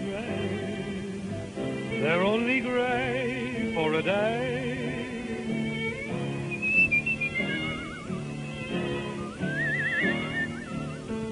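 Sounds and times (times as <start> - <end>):
instrumental accompaniment of sustained chords: 0.1 - 11.3
person whistling a bright melody with vibrato: 6.5 - 8.3, 9.1 - 10.9.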